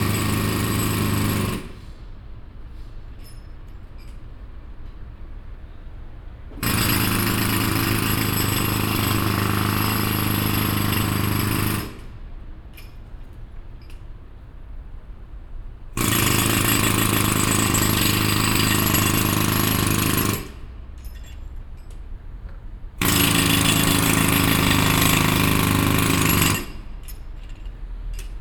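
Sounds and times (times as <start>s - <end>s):
pneumatic drill: 0.0s - 2.0s, 6.5s - 12.2s, 16.0s - 21.2s, 23.0s - 28.4s.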